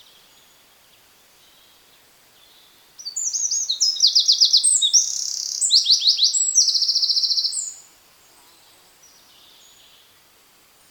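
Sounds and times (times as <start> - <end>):
Eurasian wren Troglodytes troglodytes singing shrill trills and rattles: 3.0 - 7.8.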